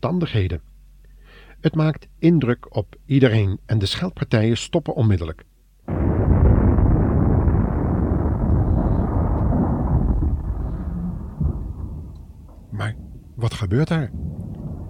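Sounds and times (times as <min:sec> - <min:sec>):
speech: 0:00.0 - 0:00.7, 0:01.6 - 0:05.5, 0:12.8 - 0:14.4
massive earthquake rumble with rattling texture: 0:05.9 - 0:14.8.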